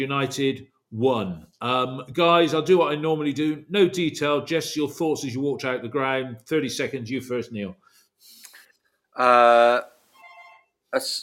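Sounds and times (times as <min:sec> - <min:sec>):
speech: 0:00.0 - 0:08.4, 0:09.2 - 0:09.9, 0:10.9 - 0:11.2
phone ringing with buzzing electronic tone: 0:10.2 - 0:10.8.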